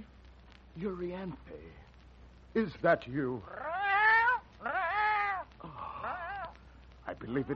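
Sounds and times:
speech: 0.8 - 1.9, 2.5 - 3.8, 7.1 - 7.5
cat meowing: 3.5 - 6.6.

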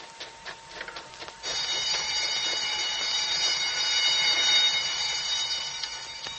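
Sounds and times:
loud continuous prison alarm bell ringing: 1.4 - 6.3.

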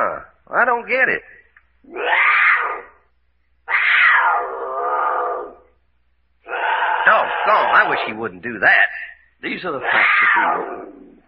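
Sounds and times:
speech: 0.6 - 2.8, 7.5 - 11.1
mountain lion screaming in harsh drawn-out wails: 1.8 - 3.0, 3.7 - 5.7, 6.4 - 8.2, 9.8 - 11.2.

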